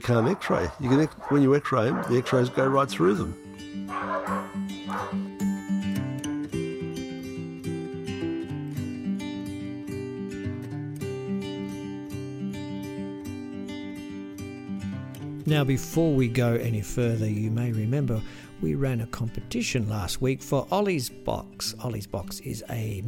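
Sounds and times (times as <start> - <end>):
dog barks and yips: 0.0 - 2.9, 3.9 - 5.2
speech: 0.0 - 4.4, 15.5 - 23.0
music: 0.0 - 23.0.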